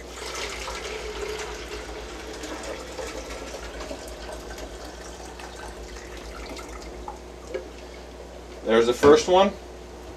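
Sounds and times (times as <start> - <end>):
liquid pouring through a filter cup into a container: 0.0 - 8.0
speech: 8.7 - 9.6.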